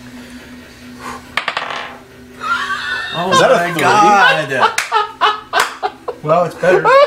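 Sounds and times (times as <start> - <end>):
die rolled on a table: 1.4 - 2.0
laughter: 2.4 - 7.0
speech: 3.2 - 4.8, 6.2 - 7.0.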